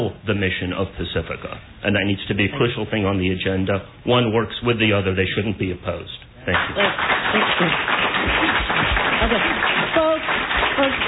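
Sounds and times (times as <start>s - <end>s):
speech: 0.0s - 8.4s, 9.2s - 10.1s
audience applauding after a public comment at a meeting: 6.5s - 11.0s.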